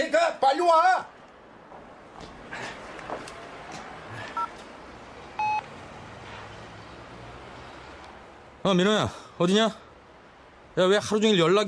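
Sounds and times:
steady hum of traffic or an idling vehicle: 0.0 - 11.6
speech: 0.5 - 1.2, 8.6 - 9.8, 10.8 - 11.6
electronic keypad tones from a phone being dialed: 5.4 - 5.6.

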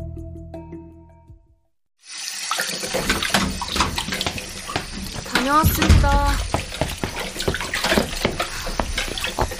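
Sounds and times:
running tap water splashing into a sink while washing dishes: 2.0 - 9.5
dishes clinking and knocking as they are washed: 2.9 - 9.5
speech: 5.5 - 6.5.

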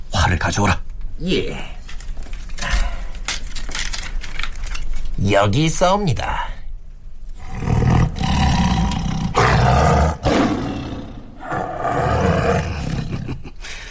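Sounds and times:
speech: 0.4 - 1.8, 5.2 - 6.5
tiger roaring and growling: 7.4 - 13.4.

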